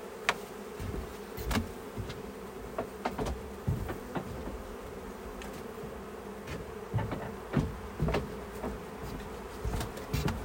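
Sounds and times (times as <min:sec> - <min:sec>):
many honeybees buzzing around a hive: 0:00.0 - 0:10.4
sharp clicks and knocks: 0:01.4 - 0:04.7, 0:06.5 - 0:10.4.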